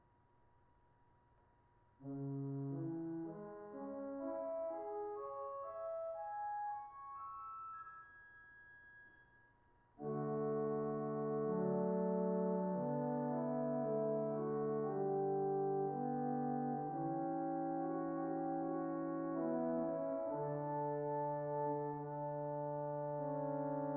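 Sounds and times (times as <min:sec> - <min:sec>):
pipe organ geigen diapason stop: 0:02.2 - 0:07.2, 0:10.0 - 0:23.9.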